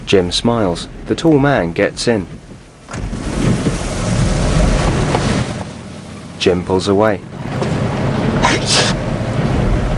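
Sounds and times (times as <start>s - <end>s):
steady low rumble: 0.0s - 9.9s
speech: 0.1s - 3.0s, 6.4s - 7.6s
person sneezing inside a car on a rainy day: 8.4s - 9.0s.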